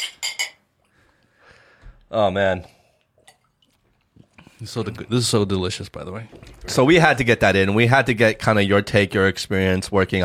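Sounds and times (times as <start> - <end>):
glasses clinking in a toast: 0.0 - 0.7
speech: 2.1 - 2.8, 4.6 - 10.2.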